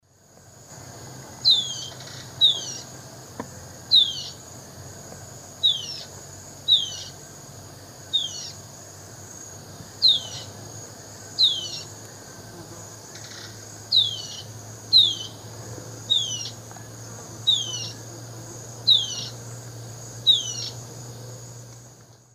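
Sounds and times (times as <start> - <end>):
Hylophylax naevius distress calls in varzea in South America: 1.4 - 2.9, 3.9 - 4.4, 5.6 - 7.2, 8.1 - 8.6, 10.0 - 10.5, 11.4 - 11.9, 13.2 - 15.4, 16.1 - 16.6, 17.4 - 18.1, 18.8 - 19.5, 20.2 - 20.8.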